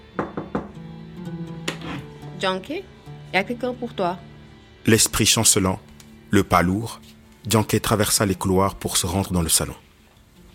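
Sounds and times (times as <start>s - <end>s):
knocking on a door: 0.1s - 0.8s
speech: 2.4s - 9.9s.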